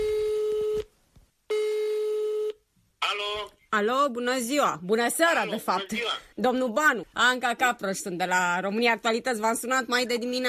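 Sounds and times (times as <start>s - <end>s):
telephone ringback tone: 0.0s - 0.9s, 1.5s - 2.6s
speech: 3.8s - 10.4s.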